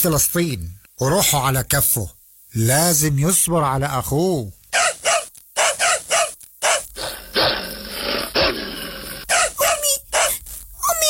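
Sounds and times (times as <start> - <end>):
speech: 0.0 - 4.6
dogs barking loudly: 4.8 - 10.4
dogs growling: 6.7 - 9.6.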